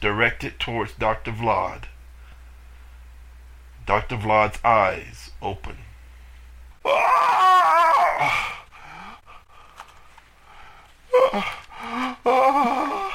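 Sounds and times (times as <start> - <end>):
speech: 0.0 - 1.9, 3.9 - 5.8, 6.8 - 8.6, 11.1 - 13.0
loud shrill scream with wavering pitch: 6.8 - 8.6, 11.1 - 13.1.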